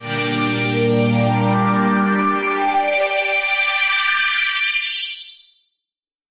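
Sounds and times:
big sweeping chord transition: 0.0s - 4.1s.

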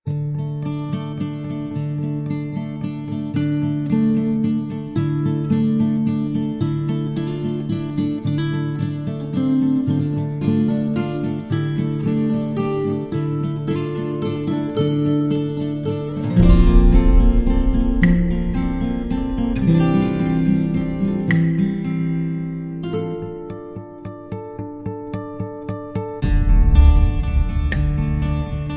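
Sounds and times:
guitars: 0.0s - 28.7s
percussion: 16.2s - 23.2s, 26.2s - 28.7s.

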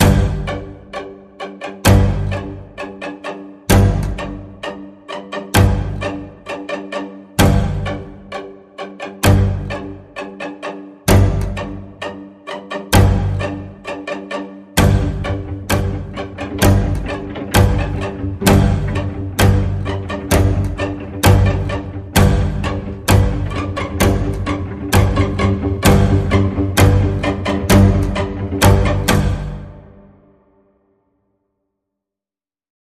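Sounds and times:
sinister string pulse in the key of G: 0.0s - 30.2s.

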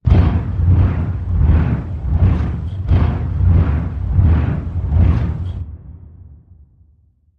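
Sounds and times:
hellish turbine roaring: 0.0s - 5.8s.

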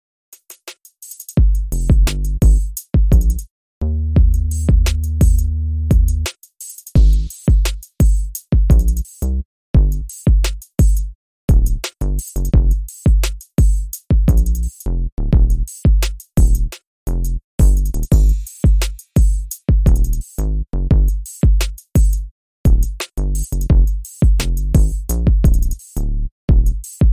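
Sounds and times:
drums: 0.4s - 3.5s, 4.2s - 27.1s
bass: 1.4s - 6.3s, 7.0s - 27.1s.

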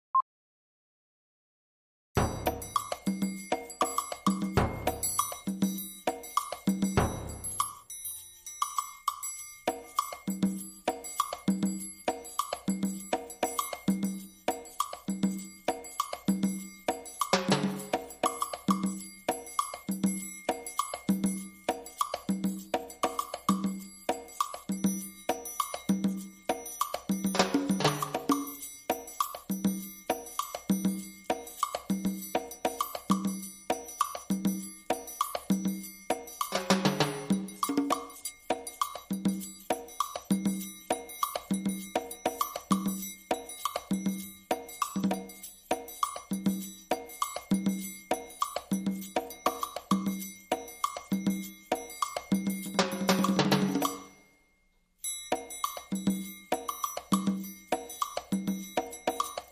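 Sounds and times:
highlife stereo percussion: 2.2s - 54.3s, 55.0s - 59.5s.

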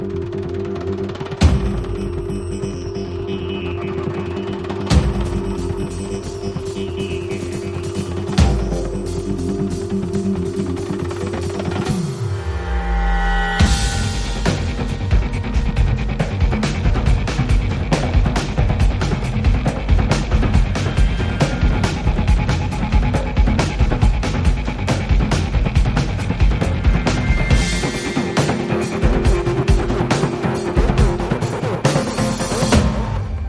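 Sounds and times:
small percussion: 0.2s - 33.3s
full driving drum beat: 1.3s - 12.2s, 13.6s - 33.3s.

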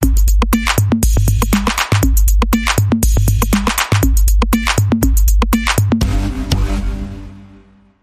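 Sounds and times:
reversed dance music bumper: 0.0s - 7.8s.

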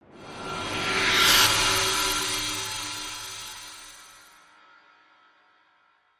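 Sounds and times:
reversed metal sting: 0.2s - 4.3s.

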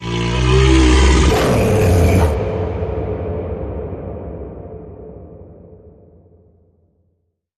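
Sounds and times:
grizzly bear roaring with a deep harsh rumbling growl: 0.0s - 2.5s.

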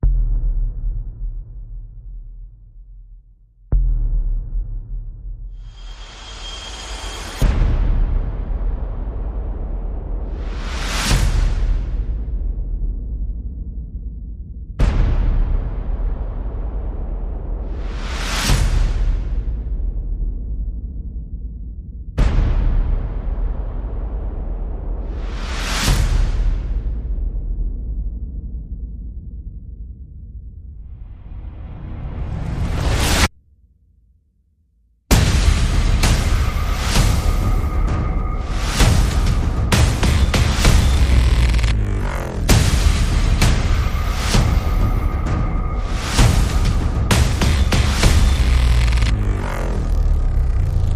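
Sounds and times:
drums: 0.0s - 29.7s, 35.1s - 50.9s
percussion: 0.0s - 33.3s, 35.1s - 50.9s
sound effects: 35.1s - 50.9s.

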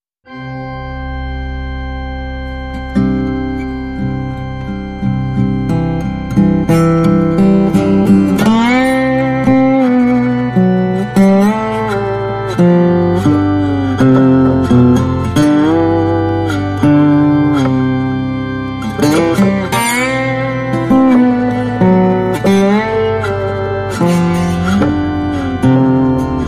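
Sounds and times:
organ: 0.3s - 26.4s
slide guitar: 0.3s - 26.4s.

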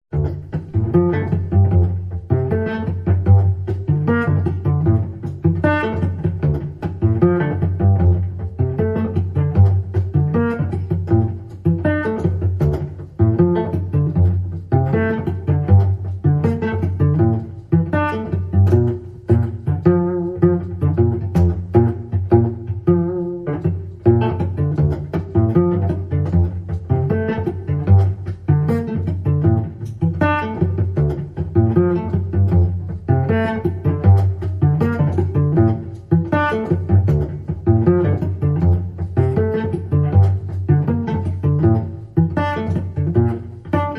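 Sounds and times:
cello pizzicato: 0.1s - 43.9s.

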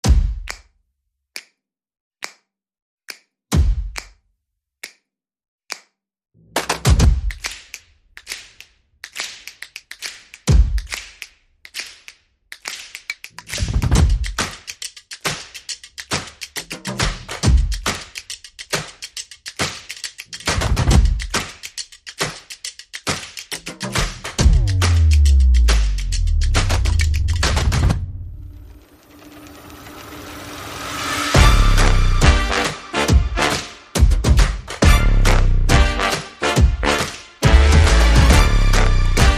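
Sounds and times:
light percussion: 6.6s - 39.3s.

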